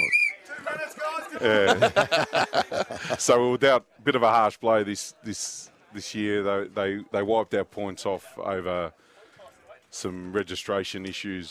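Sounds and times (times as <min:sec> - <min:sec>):
referee's whistle blast: 0:00.0 - 0:00.5
laughter: 0:00.0 - 0:03.4
speech: 0:01.4 - 0:09.1, 0:09.9 - 0:11.4.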